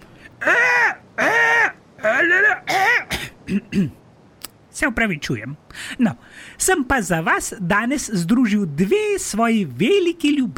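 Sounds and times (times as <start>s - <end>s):
human voice imitating a squawking seagull attempting to sing: 0.4s - 3.1s
speech: 3.5s - 4.0s, 4.8s - 10.5s.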